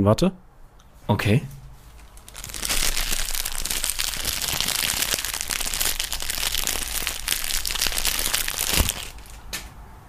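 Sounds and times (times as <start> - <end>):
speech: 0.0 - 0.5, 1.1 - 1.6
plastic tissue pack crinkling: 1.9 - 9.6.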